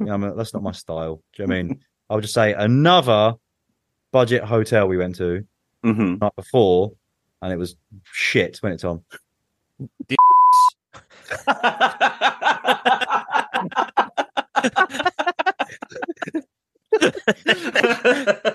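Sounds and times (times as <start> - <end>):
speech: 0.0 - 3.4, 4.1 - 9.2, 9.8 - 10.7, 11.3 - 13.9, 14.6 - 18.5
censor bleep tone: 10.2 - 10.8
light chuckling: 11.0 - 18.5.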